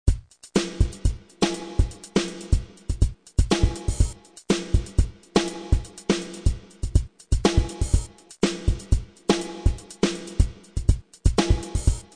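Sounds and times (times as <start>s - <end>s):
drum groove: 0.0s - 12.1s.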